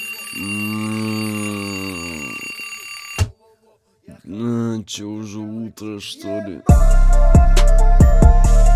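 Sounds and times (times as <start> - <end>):
electronic alarm clock buzzing: 0.0 - 3.3
speech: 0.4 - 0.7, 4.9 - 8.6.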